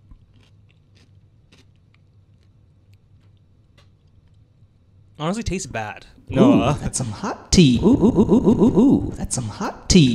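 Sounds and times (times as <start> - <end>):
person biting and chewing a crunchy snack: 0.0 - 4.5
speech: 5.2 - 10.1.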